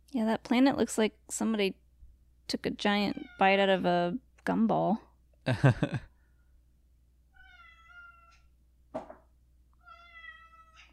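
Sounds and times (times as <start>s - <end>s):
speech: 0.1s - 1.8s, 2.5s - 6.1s
cat meowing: 7.3s - 8.5s, 9.8s - 10.9s.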